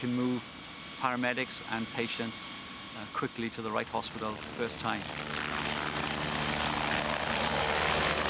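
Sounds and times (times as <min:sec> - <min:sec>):
speech: 0:00.0 - 0:05.5
air ambulance helicopter engine and rotor roar: 0:00.0 - 0:08.2.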